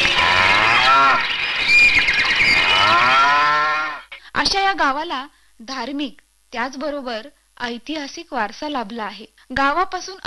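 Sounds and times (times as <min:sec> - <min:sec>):
cow mooing in a village: 0:00.1 - 0:01.2, 0:02.6 - 0:04.0
speech: 0:04.4 - 0:10.2.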